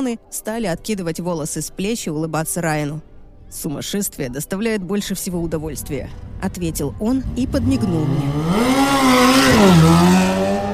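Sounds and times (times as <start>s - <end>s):
speech: 0.0s - 10.4s
car engine roaring as the car speeds away: 5.4s - 10.7s.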